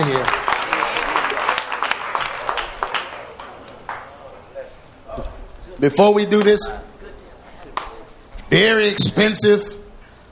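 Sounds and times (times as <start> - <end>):
crowd clapping slowly in unison: 0.0 - 4.2
speech: 5.8 - 6.9, 8.5 - 9.8.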